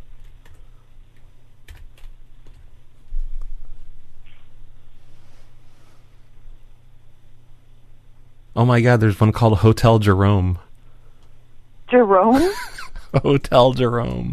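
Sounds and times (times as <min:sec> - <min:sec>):
quick typing on a computer keyboard with plastic key clicks: 0:00.2 - 0:00.6, 0:01.6 - 0:02.7
speech: 0:08.6 - 0:10.6, 0:11.9 - 0:14.3.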